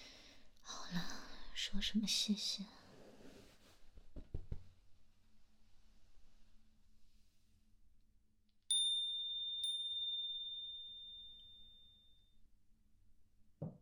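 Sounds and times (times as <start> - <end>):
speech: 0.9 - 2.8
knocks and thumps: 4.0 - 4.8
electronic doorbell chiming: 8.7 - 12.2.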